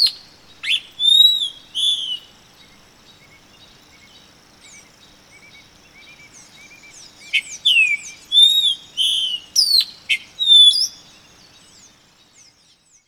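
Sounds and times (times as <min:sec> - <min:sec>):
epaulet oriole whistled song: 0:00.0 - 0:02.3, 0:06.2 - 0:11.2.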